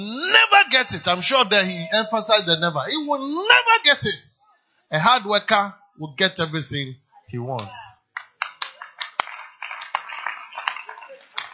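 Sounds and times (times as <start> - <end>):
speech: 0.0 - 4.3, 4.9 - 8.0
hand claps: 7.6 - 11.5.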